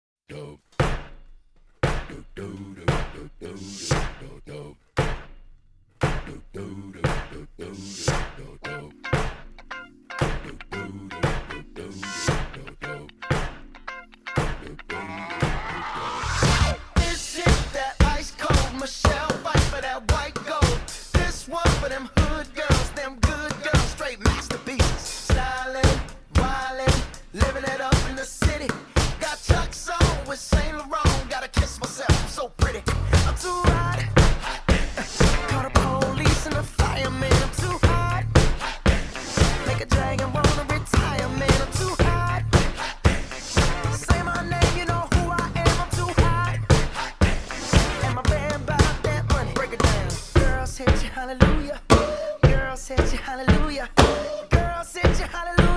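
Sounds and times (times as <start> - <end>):
basket beat: 0.8 - 2.2, 2.9 - 3.3, 3.9 - 4.4, 5.0 - 5.4, 6.0 - 6.4, 7.1 - 7.4, 8.1 - 8.4, 9.2 - 9.5, 10.2 - 10.5, 11.2 - 11.6, 13.3 - 13.6, 14.4 - 14.6, 16.4 - 55.7.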